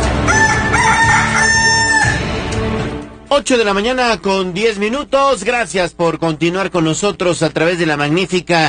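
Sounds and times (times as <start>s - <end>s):
rooster crowing: 0.2s - 2.5s
speech: 3.4s - 8.6s.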